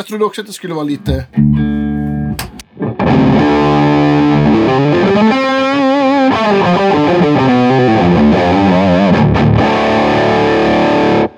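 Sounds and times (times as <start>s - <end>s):
speech: 0.0s - 1.7s
overdriven electric guitar through tube amp: 3.0s - 11.3s.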